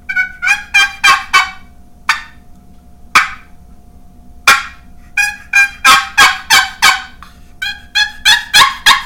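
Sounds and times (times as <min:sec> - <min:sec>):
turkey gobbling: 0:00.1 - 0:02.4, 0:04.5 - 0:09.0.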